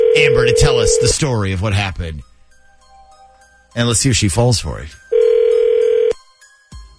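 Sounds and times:
telephone ringback tone on an outgoing call: 0:00.0 - 0:01.2, 0:05.1 - 0:06.2
speech: 0:00.2 - 0:02.3, 0:03.7 - 0:05.2.

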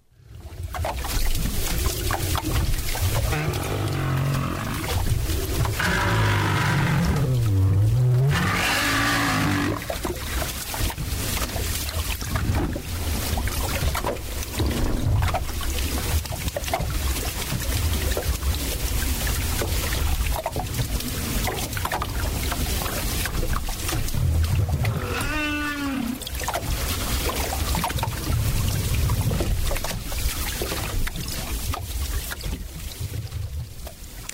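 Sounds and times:
steady underwater rumbling wash of noise: 0:00.0 - 0:34.3
southern right whale calls underwater: 0:03.0 - 0:10.2, 0:24.7 - 0:26.4.

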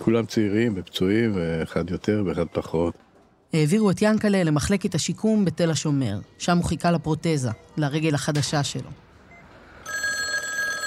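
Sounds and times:
speech: 0:00.0 - 0:09.0
telephone bell ringing with a bright electronic trill: 0:09.7 - 0:10.8.

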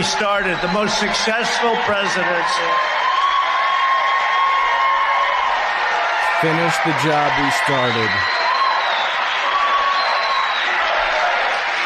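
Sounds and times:
speech: 0:00.0 - 0:03.0, 0:06.4 - 0:08.5
large political rally crowd cheering and applauding: 0:00.0 - 0:11.8
scattered whistles from a rally crowd: 0:08.1 - 0:10.8.

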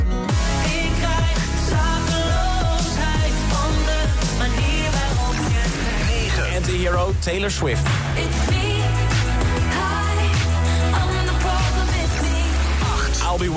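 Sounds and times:
Dutch pop song played on radio: 0:00.0 - 0:13.5
speech: 0:07.2 - 0:08.6.

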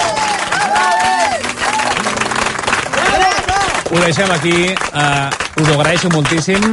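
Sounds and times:
cheering voices and whoops: 0:00.0 - 0:02.0
crowd applause: 0:00.0 - 0:06.7
speech: 0:03.9 - 0:06.7.

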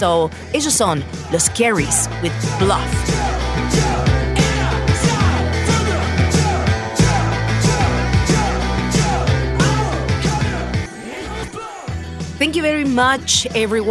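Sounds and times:
speech: 0:00.0 - 0:03.3, 0:12.4 - 0:13.8
energetic shouted vocals: 0:01.0 - 0:12.0
rock band song with driving drums, heavy bass and distorted guitars: 0:01.2 - 0:12.4.

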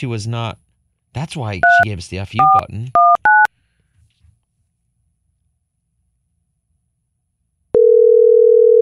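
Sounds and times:
speech: 0:00.0 - 0:03.2
phone call ringing tone while dialing: 0:07.8 - 0:08.8.

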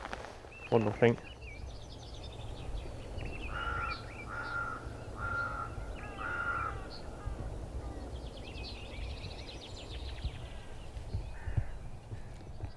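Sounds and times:
steady low rumble of ambient noise: 0:00.0 - 0:12.7
many birds chirping and trilling outdoors: 0:00.4 - 0:12.7
speech: 0:00.7 - 0:01.3
harsh crow-like caws: 0:03.4 - 0:08.0, 0:10.4 - 0:12.4.

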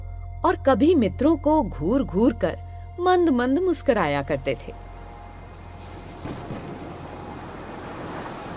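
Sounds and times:
speech: 0:00.4 - 0:04.8
steady rain: 0:05.2 - 0:08.5
low rolling thunder: 0:05.4 - 0:08.5.

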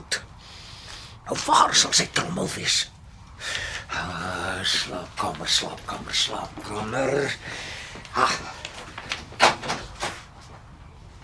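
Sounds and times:
speech: 0:01.3 - 0:08.5
cupboard door being opened: 0:09.3 - 0:10.3.

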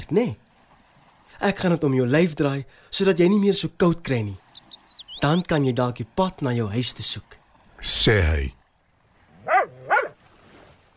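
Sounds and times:
speech: 0:00.1 - 0:00.4, 0:01.4 - 0:04.6, 0:05.2 - 0:08.6
small dog barking happily: 0:09.4 - 0:10.2.

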